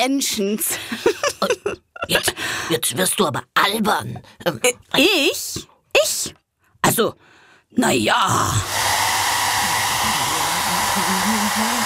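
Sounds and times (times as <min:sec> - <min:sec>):
speech: 0:00.0 - 0:09.0, 0:11.0 - 0:11.8
laughter: 0:00.8 - 0:02.4
hair dryer blowing: 0:08.6 - 0:11.8.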